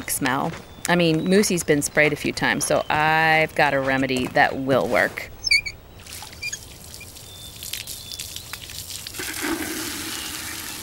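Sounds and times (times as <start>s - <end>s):
speech: 0.1s - 5.3s
warm water pouring in a splashy stream: 8.1s - 10.8s.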